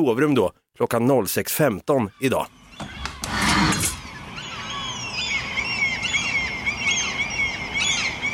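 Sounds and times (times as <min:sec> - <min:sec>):
speech: 0:00.0 - 0:02.9
breeding-season gulls calling outside a bedroom window at dawn: 0:02.1 - 0:08.3
steady outdoor hum: 0:02.4 - 0:08.3.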